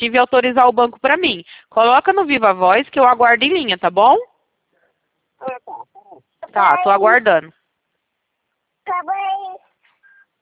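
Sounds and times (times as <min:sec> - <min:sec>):
speech: 0:00.0 - 0:04.3, 0:05.4 - 0:07.6, 0:08.9 - 0:09.6
baby babbling: 0:05.4 - 0:07.0, 0:08.9 - 0:09.7.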